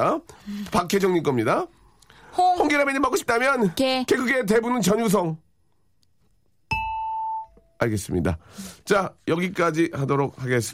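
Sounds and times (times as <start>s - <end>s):
speech: 0.0s - 1.8s, 2.6s - 5.4s, 7.8s - 10.7s
faint room noise: 0.0s - 10.7s
ding-dong-dang correct-answer chime: 6.7s - 7.8s.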